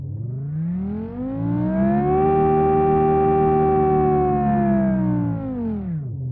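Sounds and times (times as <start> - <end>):
German V10 engine exterior sound: 0.2 - 6.1.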